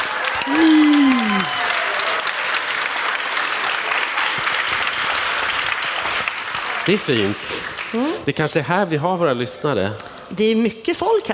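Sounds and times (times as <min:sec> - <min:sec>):
live audience applauding: 0:00.0 - 0:08.3
speech: 0:06.9 - 0:11.3.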